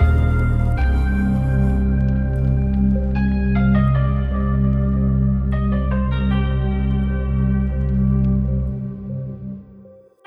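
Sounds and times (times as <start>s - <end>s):
broken piano: 0.0s - 9.6s.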